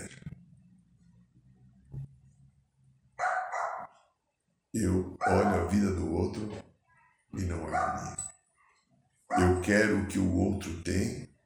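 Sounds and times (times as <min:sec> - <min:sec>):
small Pomeranian dog barking at dogs walked past on the street: 0:03.2 - 0:03.9
speech: 0:04.8 - 0:06.6, 0:07.4 - 0:08.3, 0:09.6 - 0:11.3.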